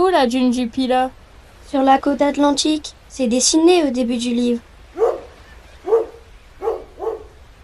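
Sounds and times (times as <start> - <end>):
speech: 0.1 - 4.7
dog barking excitedly: 5.0 - 7.4.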